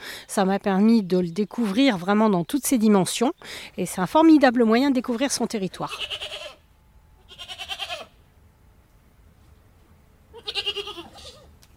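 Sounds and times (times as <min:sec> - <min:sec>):
speech: 0:00.4 - 0:06.4
herd of goats with young kids bleating in Mayenne, France: 0:05.8 - 0:06.6, 0:07.2 - 0:08.2, 0:10.3 - 0:11.4.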